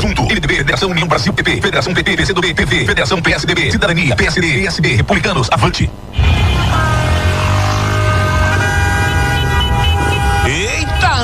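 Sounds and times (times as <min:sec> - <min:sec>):
traffic rumble: 0:00.0 - 0:11.2
speech: 0:00.3 - 0:06.4
many car horns honking together: 0:06.1 - 0:11.2.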